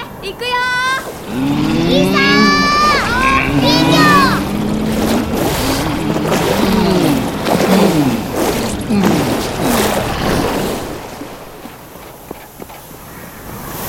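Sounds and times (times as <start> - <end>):
speech: 0.3 - 2.2
motor engine running after being started: 1.3 - 11.6.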